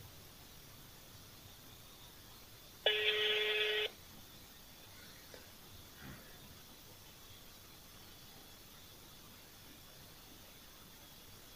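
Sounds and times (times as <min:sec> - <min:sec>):
faint hiss on the phone line: 0:00.0 - 0:11.5
phone ringback tone through the line: 0:02.9 - 0:03.9.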